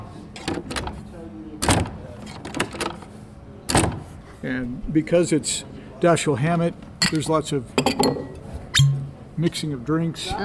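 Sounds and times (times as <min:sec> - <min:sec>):
large sound-effects prop door latch clicks and rattles: 0:00.4 - 0:01.0, 0:01.6 - 0:03.0, 0:03.7 - 0:04.1
large sound-effects prop door closing with a heavy thud: 0:01.6 - 0:03.0, 0:03.7 - 0:04.2
speech: 0:04.4 - 0:08.2, 0:09.4 - 0:10.4.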